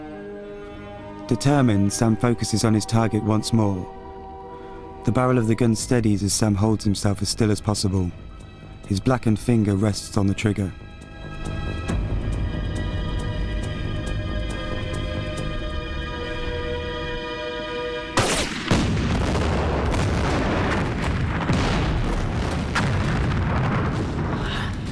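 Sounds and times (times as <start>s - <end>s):
speech: 1.3s - 4.0s, 5.0s - 10.8s
sustained tonal drone with sharp periodic clicks: 10.9s - 16.8s
dense crackling explosion blasts across a burning factory: 18.1s - 24.8s
heavy explosion boom at a burning factory: 18.2s - 24.8s
rumbling debris from a burning factory: 18.7s - 24.8s.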